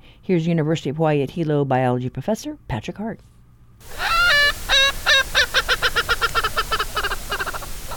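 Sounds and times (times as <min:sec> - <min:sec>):
speech: 0:00.3 - 0:04.0
Erckel's francolin giving a harsh cackling call: 0:03.8 - 0:07.9.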